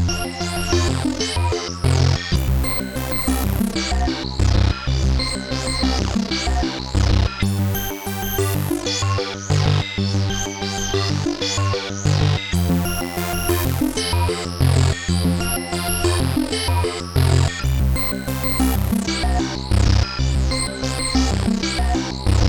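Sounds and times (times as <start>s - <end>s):
synthpop music: 0.2s - 22.4s.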